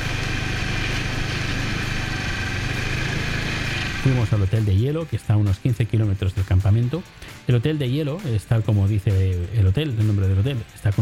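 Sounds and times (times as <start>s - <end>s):
snowmobile engine idling: 0.0s - 4.6s
speech: 4.0s - 11.0s.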